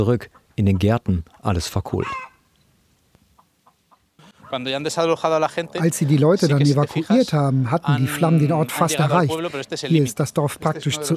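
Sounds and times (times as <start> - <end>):
speech: 0.0 - 2.3, 4.5 - 11.1
chicken clucking at a neighbouring house in a village: 0.0 - 2.4, 3.4 - 4.9
chicken squawk: 1.9 - 2.5, 3.4 - 4.7.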